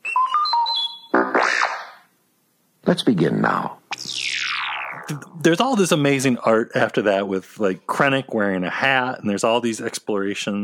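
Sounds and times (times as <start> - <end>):
robot droid electronic beeps and whistles as page-turn cue: 0.0 - 2.0, 3.9 - 5.4
speech: 2.9 - 3.8, 5.1 - 10.6
robot droid buzzy warble sweeping up and down: 3.9 - 5.5.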